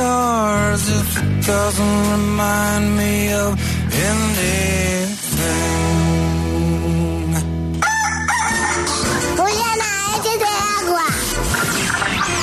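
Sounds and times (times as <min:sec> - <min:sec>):
steady musical background: 0:00.0 - 0:12.4
speech: 0:01.1 - 0:06.0
rooster crowing: 0:07.8 - 0:09.1.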